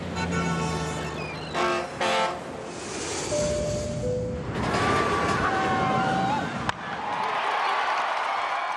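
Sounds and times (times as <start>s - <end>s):
horn blast: 0.2s - 2.6s
rushing noise like wind or water: 2.4s - 6.6s
crowd roar: 4.7s - 8.7s.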